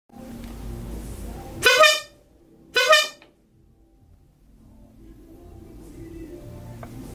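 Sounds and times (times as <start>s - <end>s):
bicycle horn: 1.6s - 3.3s.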